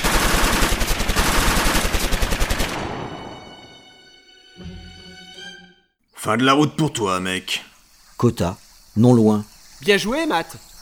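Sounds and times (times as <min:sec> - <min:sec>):
loud automatic gunfire: 0:00.0 - 0:03.2
speech: 0:06.2 - 0:10.7.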